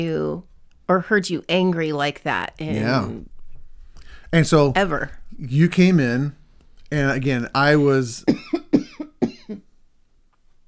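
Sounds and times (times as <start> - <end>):
speech: 0.0 - 3.3, 4.3 - 8.6
person coughing harsh chesty coughs: 2.7 - 3.2, 8.2 - 9.6.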